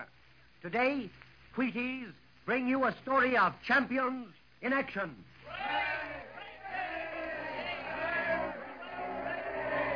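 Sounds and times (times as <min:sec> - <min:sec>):
speech: 0:00.0 - 0:05.6
huge stadium crowd of American baseball fans roaring and cheering: 0:05.4 - 0:09.9.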